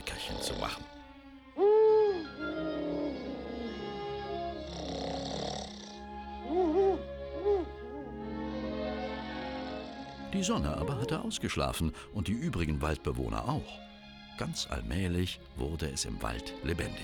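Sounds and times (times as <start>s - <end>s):
owl hooting: 0.0s - 12.1s
speech: 0.2s - 1.0s, 10.4s - 17.0s.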